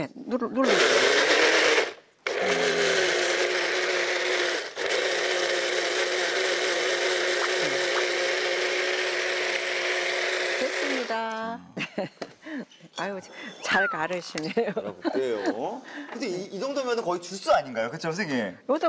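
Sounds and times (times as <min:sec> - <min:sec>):
speech: 0:00.0 - 0:01.1, 0:13.1 - 0:18.8
blender motor grinding apricots into juice: 0:00.6 - 0:11.4.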